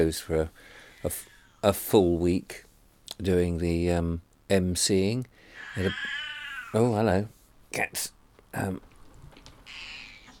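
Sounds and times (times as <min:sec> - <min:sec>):
speech: 0:00.0 - 0:08.9
cat meowing: 0:05.6 - 0:06.8, 0:09.6 - 0:10.3.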